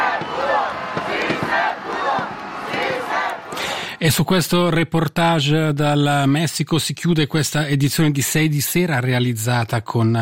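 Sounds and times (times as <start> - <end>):
large crowd chanting a slogan in unison: 0.0 - 4.0
speech: 4.0 - 10.2.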